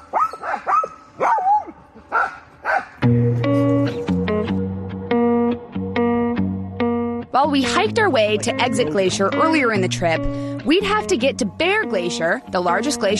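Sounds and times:
pack of sled dogs barking and yipping excitedly: 0:00.0 - 0:03.1
steady musical tones: 0:01.8 - 0:13.1
speech: 0:07.8 - 0:13.1.

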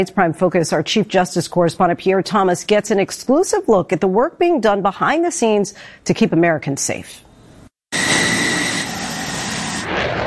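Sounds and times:
speech: 0:00.0 - 0:07.3
F-16 fighter jet roaring during takeoff with high whine: 0:07.9 - 0:10.2.

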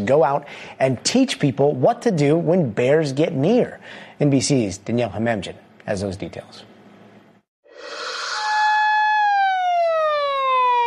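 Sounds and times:
speech: 0:00.0 - 0:06.7
siren wailing in a sustained tone sliding downward in pitch: 0:07.8 - 0:10.8.

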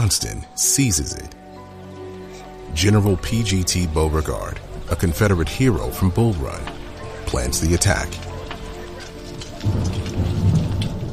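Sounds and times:
speech: 0:00.0 - 0:01.4, 0:02.7 - 0:08.3, 0:09.6 - 0:10.3
steady rainfall: 0:00.8 - 0:11.1
low rumble of thunder: 0:04.7 - 0:11.1.

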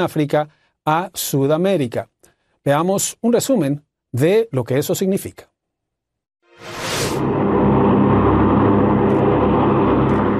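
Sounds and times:
speech: 0:00.0 - 0:05.5, 0:06.6 - 0:07.5
whoosh of MQ-9 Reaper drone flying by: 0:06.5 - 0:10.3
MQ-9 Reaper unmanned propeller-driven drone of the US armed forces flying by: 0:07.2 - 0:10.3.

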